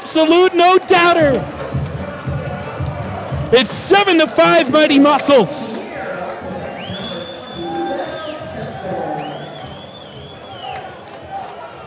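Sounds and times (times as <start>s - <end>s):
big stadium crowd roaring and cheering: 0.0s - 11.8s
speech: 0.2s - 1.6s, 3.5s - 5.7s
shrill whistles: 6.6s - 11.2s.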